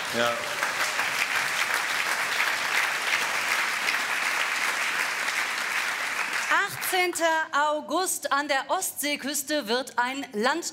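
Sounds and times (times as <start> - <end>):
sizable crowd applauding: 0.0 - 7.2
speech: 0.1 - 0.6, 6.5 - 10.7.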